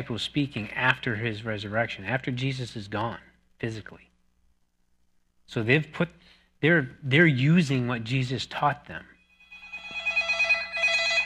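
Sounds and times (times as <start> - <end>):
speech: 0.0 - 4.1, 5.5 - 9.1
mobile phone ringtone with bright electronic melody: 9.3 - 11.2.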